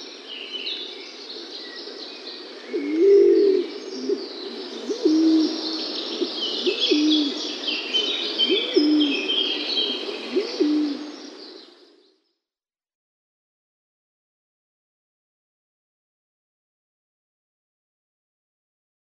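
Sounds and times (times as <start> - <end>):
male laurel pigeon cooing in display: 2.7 - 7.5, 8.4 - 11.2.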